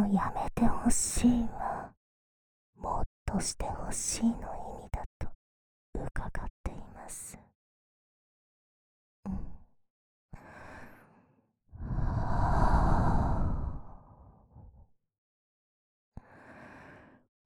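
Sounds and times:
speech: 0.1 - 1.6, 2.9 - 4.6
warm breath blown softly into the microphone: 11.8 - 14.3.

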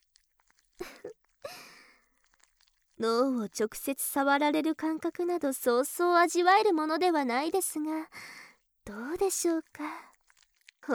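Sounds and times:
tentacles slithering squelchily with wet crunchy bursts: 0.1 - 3.8, 9.4 - 10.9
speech: 3.0 - 10.1.

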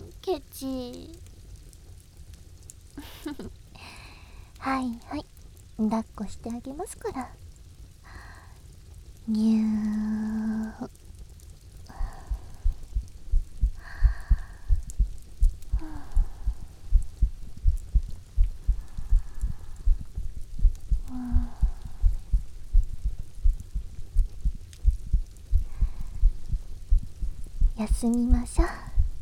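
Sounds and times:
speech: 0.3 - 1.2, 5.8 - 7.4, 9.3 - 10.2, 28.0 - 28.2
older sister's heartbeat thumping: 12.0 - 29.2.

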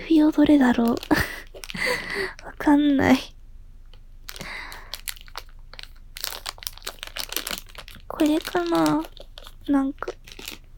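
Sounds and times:
plastic packaging being opened crinkling: 0.1 - 2.7, 4.2 - 10.7
speech: 0.2 - 3.3, 8.2 - 10.2.

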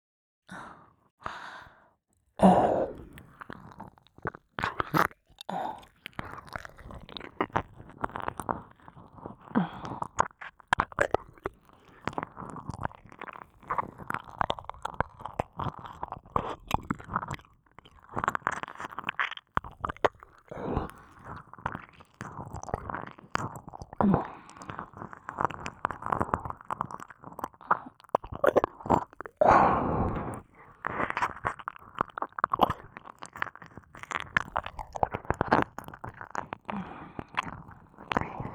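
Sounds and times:
soft breathy sighs: 0.5 - 3.4, 9.1 - 10.2, 29.4 - 30.5, 36.6 - 38.5
ASMR wet licking mouth sounds: 2.8 - 29.4, 30.3 - 38.5.

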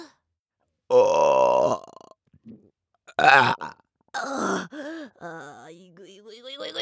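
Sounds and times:
person burping loudly: 0.9 - 2.2, 3.1 - 5.2.

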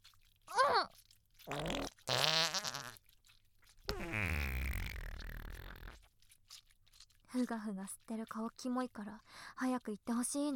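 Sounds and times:
fart noises made with the mouth: 1.4 - 3.0, 3.8 - 6.1
speech: 7.4 - 10.5.

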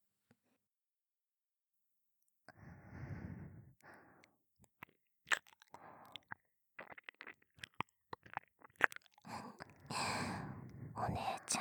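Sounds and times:
soft breathy exhale: 2.6 - 4.2, 9.3 - 11.4
wet ASMR ear-licking mouth clicks and smacks: 4.7 - 9.8.

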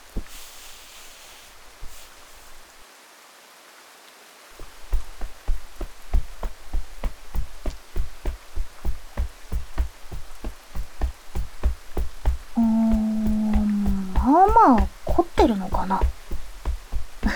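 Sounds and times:
rapid tapping on someone's shoulders: 0.0 - 0.6, 4.6 - 17.3
soft voice humming and murmuring: 12.6 - 16.2.

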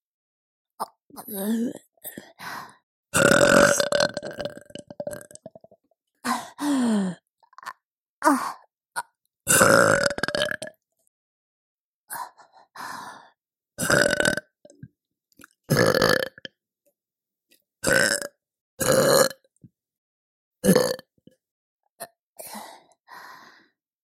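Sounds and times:
speech: 1.2 - 4.8
person burping: 3.2 - 7.8, 9.0 - 10.8, 13.8 - 14.8, 15.7 - 16.6, 17.8 - 19.5, 20.6 - 21.1.

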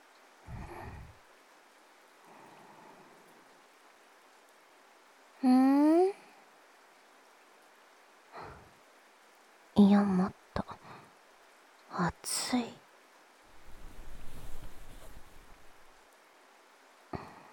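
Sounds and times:
rain falling: 0.0 - 17.5
speech: 5.4 - 5.6, 9.8 - 10.7, 12.0 - 12.8.

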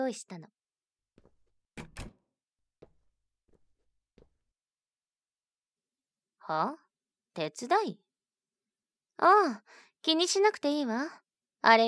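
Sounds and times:
speech: 0.1 - 0.6, 6.5 - 6.8, 7.4 - 8.0, 9.2 - 11.8
door shut firmly with a solid thud: 1.8 - 2.2
knocks and clunks of door handling and latching: 1.8 - 2.2.

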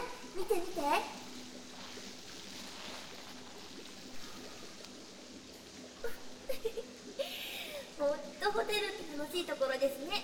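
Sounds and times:
bath water sloshing in a foaming hotel jet bath: 0.0 - 6.8
speech: 0.4 - 1.3, 8.6 - 10.2.

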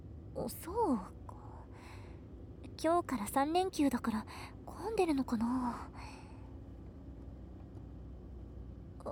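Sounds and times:
car engine rumble heard inside vehicle entering expressway: 0.0 - 9.1
speech: 0.4 - 1.2, 2.8 - 6.2.

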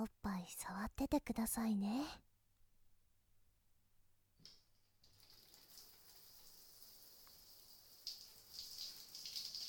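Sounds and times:
speech: 0.0 - 2.2
shower water running: 5.2 - 9.6.

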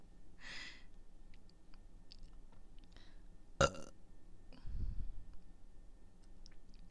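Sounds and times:
loud deep rumbling burp: 3.6 - 3.9.

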